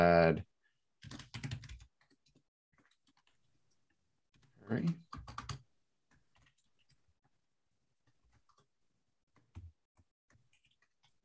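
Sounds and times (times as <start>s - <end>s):
speech: 0.3s - 1.2s, 4.7s - 5.1s
computer keyboard typing: 1.0s - 3.4s, 4.4s - 7.0s, 8.0s - 8.7s, 10.3s - 11.2s.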